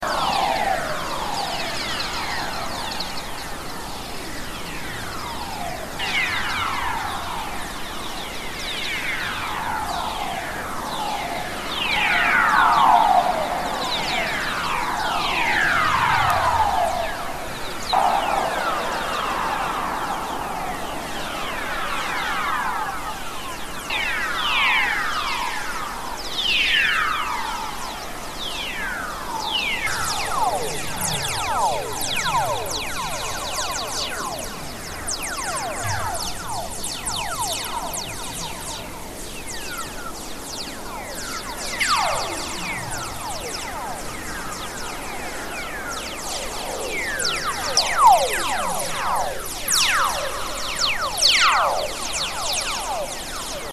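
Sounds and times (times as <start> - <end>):
whistler waves: 0.0 - 53.7.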